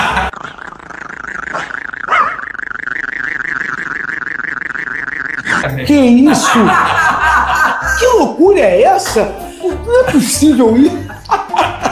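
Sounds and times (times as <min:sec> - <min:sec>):
laughter: 0:00.0 - 0:00.3, 0:06.2 - 0:08.2, 0:09.7 - 0:11.8
dog growling with a loud rattling drone: 0:00.2 - 0:03.1
speech: 0:05.7 - 0:11.1.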